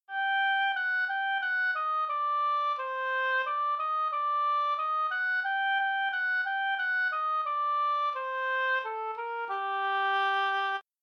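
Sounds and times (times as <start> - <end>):
harmonica playing minor scales: 0.1 - 10.8.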